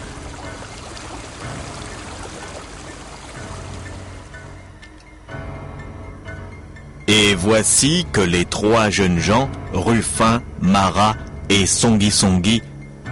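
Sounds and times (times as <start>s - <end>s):
water splashing: 0.0s - 4.5s
flowing river rushing and gurgling: 0.0s - 4.8s
speech: 7.1s - 12.7s.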